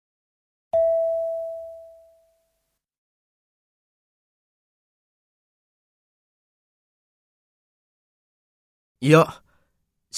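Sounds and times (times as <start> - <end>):
electronic prompt tone in a role-play exercise: 0.8 - 2.3
speech: 9.0 - 9.4.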